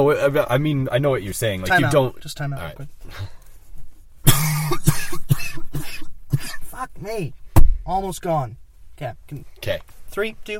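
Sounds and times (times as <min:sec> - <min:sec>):
speech: 0:00.0 - 0:03.4, 0:06.8 - 0:10.5
harsh coughing with throaty rasping: 0:04.2 - 0:06.8.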